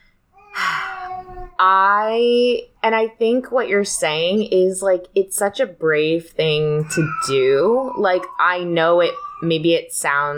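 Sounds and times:
baby babbling with high-pitched coos: 0:00.4 - 0:01.6, 0:06.8 - 0:09.6
speech: 0:01.6 - 0:10.3.

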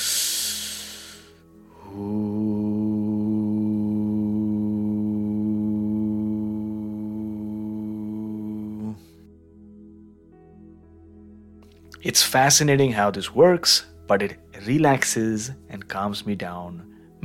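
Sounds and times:
breathy intake of air through the nose: 0:00.0 - 0:02.0
steady low hum on a long exhale during a relaxing breathing exercise: 0:00.0 - 0:10.3
speech: 0:12.0 - 0:17.2.

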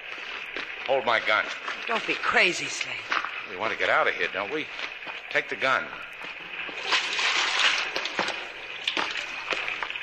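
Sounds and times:
steady rushing wash of a shallow underground river: 0:00.1 - 0:10.0
speech: 0:00.9 - 0:06.1
feet sloshing and splashing through a shallow underground river: 0:06.4 - 0:10.0.

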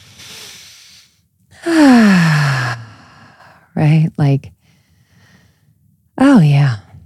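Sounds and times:
person taking a deep breath in and out: 0:00.0 - 0:03.7, 0:04.6 - 0:05.8
person sighing: 0:01.6 - 0:03.3
speech: 0:03.8 - 0:04.6, 0:06.2 - 0:06.8.

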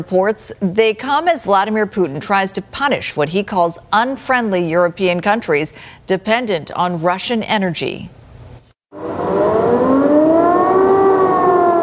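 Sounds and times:
speech: 0:00.0 - 0:08.2
air raid siren wailing over a city: 0:08.9 - 0:11.8.

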